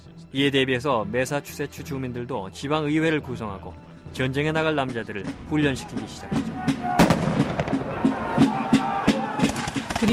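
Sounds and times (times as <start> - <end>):
speech: 0.3 - 7.6
gunshots: 6.9 - 10.1.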